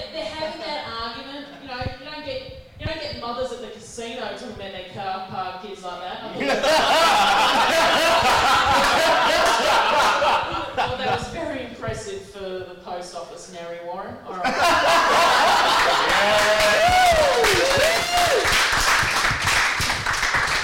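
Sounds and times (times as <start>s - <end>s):
voices: 0.0s - 17.8s
crowd laughing: 6.4s - 11.2s, 14.4s - 16.9s
crowd clapping: 7.8s - 10.2s, 15.1s - 20.6s
cheers and whistles: 16.1s - 18.6s.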